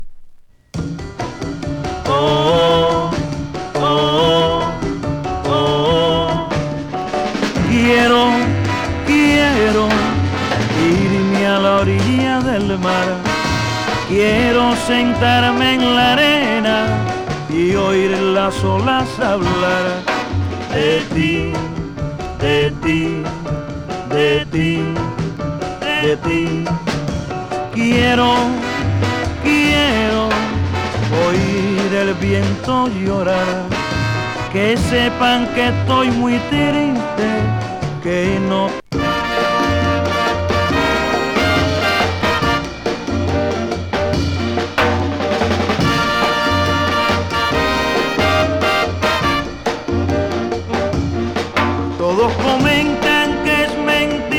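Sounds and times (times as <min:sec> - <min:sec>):
Latin soul and Northern soul music: 0:00.7 - 0:54.3.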